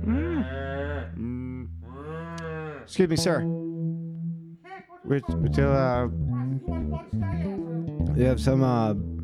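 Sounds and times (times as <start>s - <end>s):
cows mooing inside a barn: 0.1s - 3.0s
speech: 2.9s - 3.6s, 5.1s - 7.5s, 8.2s - 9.1s.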